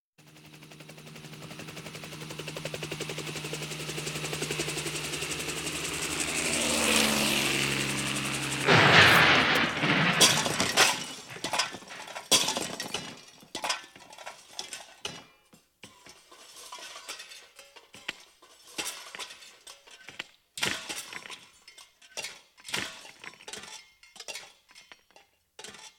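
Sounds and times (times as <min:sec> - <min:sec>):
two helicopters colliding: 0:04.0 - 0:13.0.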